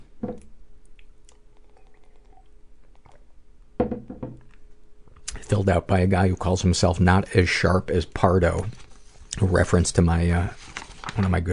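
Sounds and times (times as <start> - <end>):
soft thunk of the cup: 0.2 - 0.5, 3.8 - 4.5
person sipping tea from a cup: 0.9 - 3.4
cup clattering as set down: 3.8 - 4.5
speech: 5.5 - 8.8, 9.4 - 11.5.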